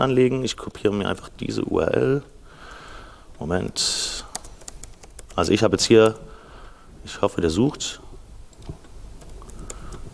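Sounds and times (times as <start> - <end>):
speech: 0.0 - 2.3, 3.4 - 4.3, 5.4 - 6.3, 7.0 - 8.0
low hum: 0.0 - 10.1
typing on a computer keyboard: 4.3 - 6.2, 8.5 - 10.0.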